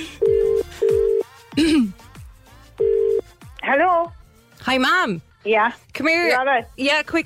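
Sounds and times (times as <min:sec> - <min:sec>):
phone ringback tone in low humming beeps: 0:00.2 - 0:01.3, 0:02.8 - 0:03.3
speech: 0:04.7 - 0:07.2.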